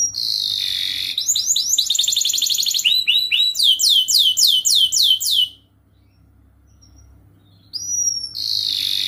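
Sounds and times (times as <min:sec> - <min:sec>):
canary singing: 0:00.0 - 0:09.0.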